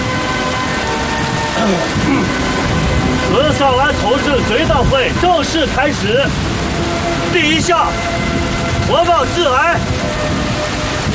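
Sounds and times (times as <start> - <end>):
heavy rain pouring down during a village memorial service: 0.0 - 11.1
speech: 1.7 - 2.4, 3.3 - 10.5.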